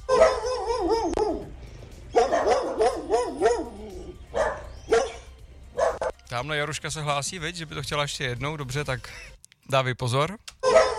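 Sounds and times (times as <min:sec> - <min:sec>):
dog barking and yipping: 0:00.0 - 0:01.5, 0:02.1 - 0:06.2, 0:10.6 - 0:10.9
speech: 0:06.4 - 0:10.9.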